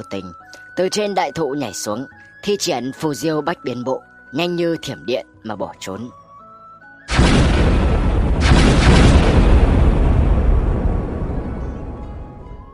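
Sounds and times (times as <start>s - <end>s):
speech: 0.0s - 6.2s
repeated explosions from a fierce battle: 7.1s - 12.0s.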